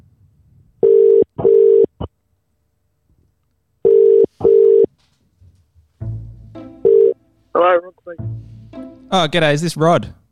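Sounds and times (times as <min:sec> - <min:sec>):
telephone ringback tone on an outgoing call: 0:00.8 - 0:01.9, 0:03.8 - 0:04.9, 0:06.8 - 0:07.2
speech: 0:09.1 - 0:10.2.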